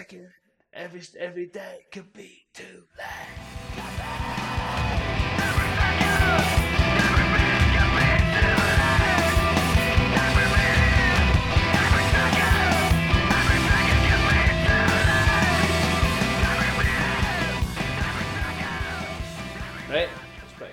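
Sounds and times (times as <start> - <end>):
speech: 0.0 - 3.6
harsh shouted screamo vocals: 3.0 - 20.2
distorted guitar riffs: 3.3 - 20.7
pounding drums: 3.6 - 19.9.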